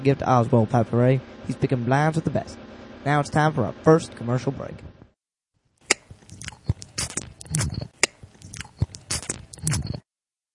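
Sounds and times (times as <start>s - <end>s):
speech: 0.0s - 5.0s
wet chewing of chewing tobacco: 5.9s - 10.0s.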